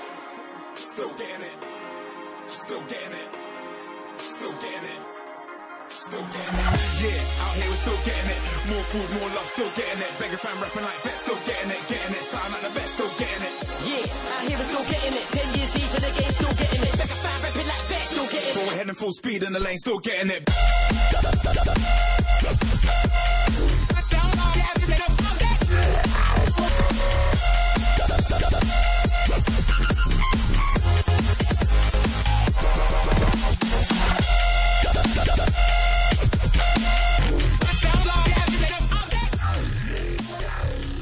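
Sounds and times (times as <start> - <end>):
loud dense electronic dance music with heavy bass: 0.0 - 40.9
rapped vocals over a driving beat: 0.7 - 1.8, 2.4 - 3.6, 4.2 - 27.0, 36.6 - 40.9
speech: 1.0 - 1.7, 2.5 - 3.5, 4.2 - 5.2, 6.0 - 22.2.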